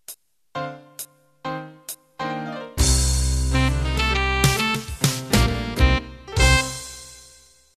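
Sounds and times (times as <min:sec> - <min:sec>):
club jazz ending played on MIDI: 0:02.8 - 0:07.4.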